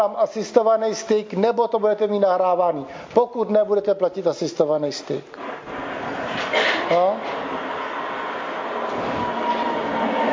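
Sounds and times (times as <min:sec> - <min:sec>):
speech: 0:00.0 - 0:05.5, 0:06.9 - 0:07.4
tram wheels and motor rumbling while pulling in to a stop: 0:05.7 - 0:10.3.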